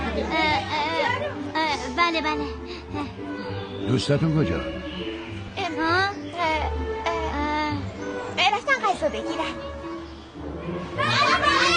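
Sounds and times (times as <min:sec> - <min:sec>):
children chattering and shouting while playing: 0:00.0 - 0:11.7
speech: 0:02.0 - 0:04.8, 0:08.9 - 0:09.9.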